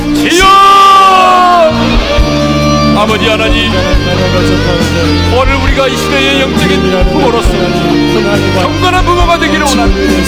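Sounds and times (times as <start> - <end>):
audience crying out together in prayer: 0.2 - 2.0
speech: 3.0 - 10.2.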